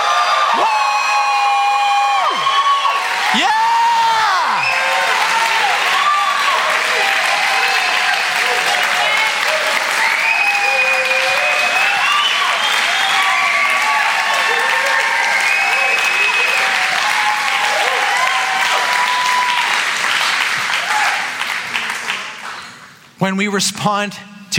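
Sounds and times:
whoops and high shouts: 0.0 - 19.8
church service audience applause and cheering: 0.0 - 23.0
speech: 23.3 - 24.5.

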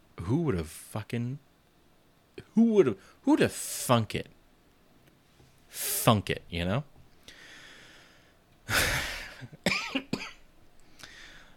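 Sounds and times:
speech: 0.3 - 1.5, 2.6 - 4.4, 5.7 - 6.9
person coughing: 8.7 - 10.5.

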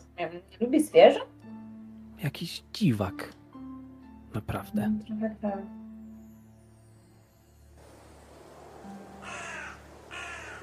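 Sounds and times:
speech: 0.2 - 1.4, 2.2 - 3.4, 4.4 - 5.8
raven cawing: 8.6 - 10.6.

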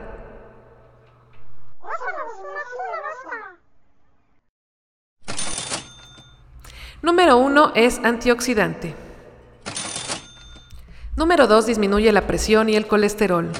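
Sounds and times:
cash register ka-ching with rattling drawer: 5.2 - 6.5, 9.5 - 10.8
speech: 7.0 - 9.0, 11.2 - 13.5.

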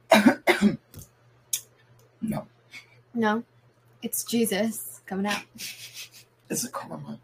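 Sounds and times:
person coughing harshly: 0.1 - 0.9
speech: 0.6 - 0.8, 2.2 - 2.5, 3.2 - 7.2.

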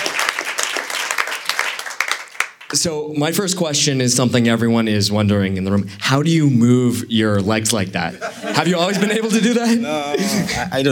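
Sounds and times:
audience applauding: 0.0 - 2.8
sharp loud claps: 0.0 - 2.8
speech: 2.7 - 10.9
laughter: 8.0 - 10.9.

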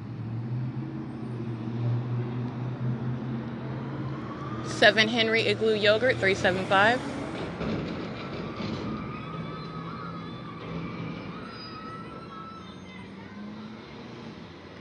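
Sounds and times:
steady roar of machinery or traffic noise: 0.0 - 14.7
partial siren-like wail from a car wash: 2.6 - 14.7
speech: 4.7 - 7.2.

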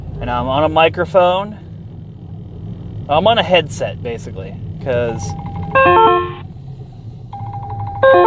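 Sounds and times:
low road rumble while driving: 0.0 - 8.2
speech: 0.2 - 1.6, 3.1 - 6.2
phone ringtone from an incoming spam call: 5.3 - 6.4, 7.4 - 8.2.

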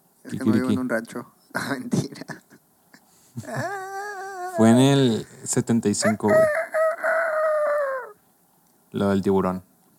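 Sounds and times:
speech: 0.3 - 2.4, 3.4 - 3.9, 4.6 - 6.6, 8.9 - 9.7
laughter: 3.4 - 4.6
person imitating a chicken crowing: 3.4 - 4.9, 6.0 - 8.2.

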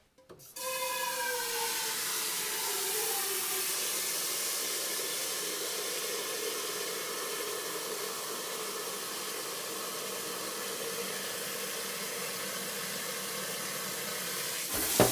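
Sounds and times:
loud steady sizzle: 0.5 - 15.0
kitchen clatter while making tomato sauce pasta: 14.7 - 15.0.

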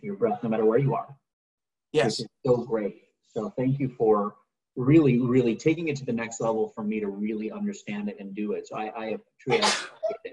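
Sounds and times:
speech: 0.1 - 1.2, 1.9 - 10.3
single sharp sneeze: 9.5 - 10.0.

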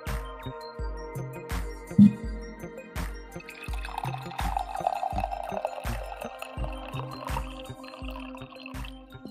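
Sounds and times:
music with a soft rhythmic beat: 0.0 - 9.2
coffee pouring into a cup: 3.4 - 9.2.

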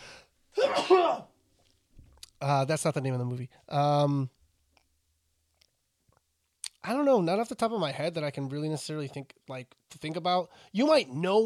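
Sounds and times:
faint noise: 0.0 - 11.4
single forceful sneeze: 0.6 - 1.3
speech: 0.8 - 1.3, 2.4 - 4.4, 6.8 - 11.4.

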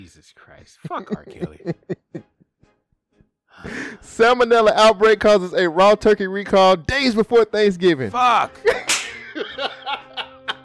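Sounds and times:
speech: 0.0 - 2.3, 3.7 - 9.0
people laughing: 0.8 - 2.4, 8.6 - 10.6
sharp slaps: 8.7 - 9.2.

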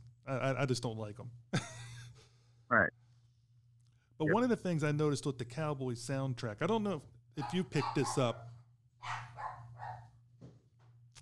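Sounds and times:
steady low electrical hum: 0.0 - 11.2
speech: 0.3 - 1.7, 4.2 - 9.2
small dog barking and yapping: 7.4 - 10.1.

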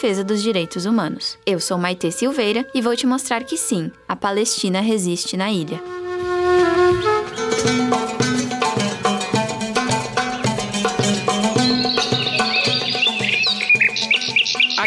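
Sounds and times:
speech: 0.0 - 8.0
rhythmic music with plucked tones and a regular beat: 5.7 - 14.8
birds chirping and twittering: 6.9 - 14.8.

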